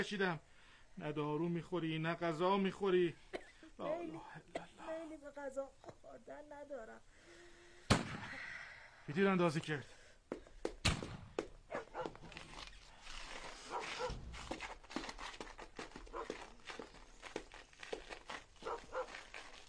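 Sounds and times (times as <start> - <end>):
speech: 0.0 - 7.2, 9.1 - 10.4
scuffling and movement of attacking dogs: 11.4 - 19.6
dogs barking and yelping frantically: 11.7 - 12.2, 13.7 - 14.2, 18.6 - 19.2.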